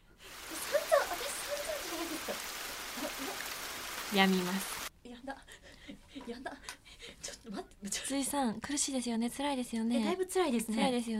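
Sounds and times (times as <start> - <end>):
steady rain: 0.2 - 4.9
speech: 4.1 - 4.7, 8.1 - 11.1.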